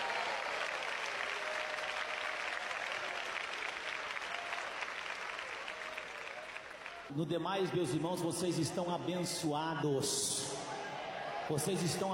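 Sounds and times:
church audience applauding: 0.0s - 7.1s
speech: 7.1s - 10.5s, 11.5s - 12.1s.

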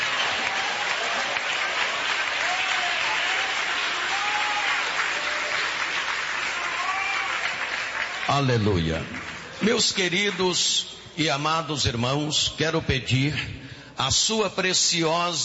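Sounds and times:
large audience clapping at a church worship service: 0.0s - 10.8s
speech: 8.3s - 15.4s.

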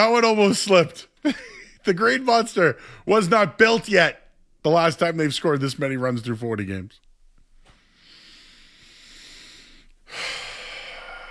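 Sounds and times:
speech: 0.0s - 7.0s
laughter: 0.9s - 2.6s
deep breath: 2.8s - 3.1s, 7.6s - 11.2s.

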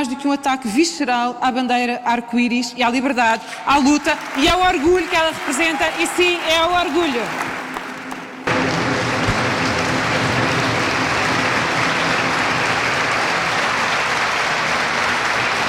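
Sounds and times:
speech: 0.0s - 7.6s
large audience applauding after a political speech: 3.7s - 15.6s.

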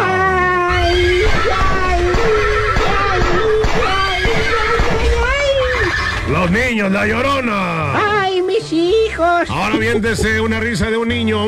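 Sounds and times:
horse whinnying: 0.7s - 6.6s
low rumbling and thudding: 0.7s - 7.5s
speech: 6.4s - 11.4s.

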